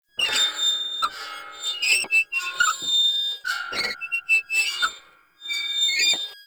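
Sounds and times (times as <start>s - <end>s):
motorcycle wheel squeaking in reverse: 0.2s - 5.0s.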